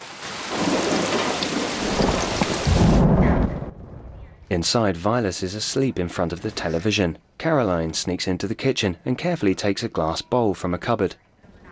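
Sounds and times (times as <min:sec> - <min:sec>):
heavy rain falling on a dark night: 0:00.0 - 0:03.8
deep thunder rumbling: 0:00.5 - 0:04.7
speech: 0:04.5 - 0:11.3.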